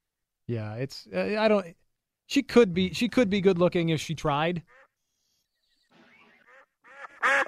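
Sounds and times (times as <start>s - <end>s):
speech: 0.5s - 4.8s, 7.2s - 7.4s
duck quacking: 4.6s - 5.0s, 6.0s - 7.4s.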